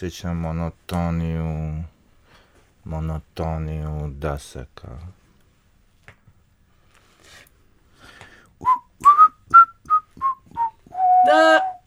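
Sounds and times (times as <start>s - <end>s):
speech: 0.0s - 1.9s, 2.8s - 5.2s, 11.2s - 11.8s
person whistling a cheerful tune: 8.6s - 11.8s.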